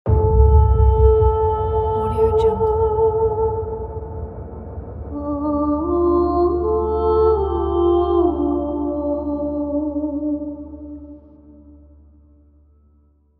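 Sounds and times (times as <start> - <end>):
epic female vocal logo: 0.1 - 4.0, 5.2 - 10.9.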